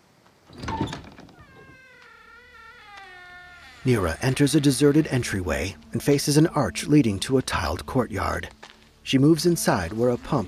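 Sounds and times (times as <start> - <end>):
large wooden door hinge creaking: 0.5 - 5.9
speech: 3.8 - 10.4.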